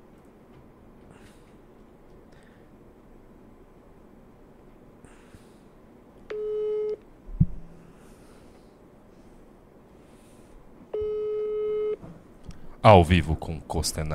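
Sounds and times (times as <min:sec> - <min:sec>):
telephone ringback tone while phoning someone for a live show: 0:06.3 - 0:07.0, 0:10.9 - 0:12.0
speech: 0:12.8 - 0:14.1.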